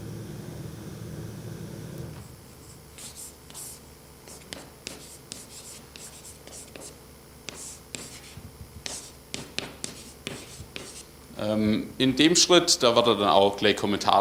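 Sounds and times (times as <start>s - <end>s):
pen handwriting: 2.6s - 11.0s
speech: 11.4s - 14.1s.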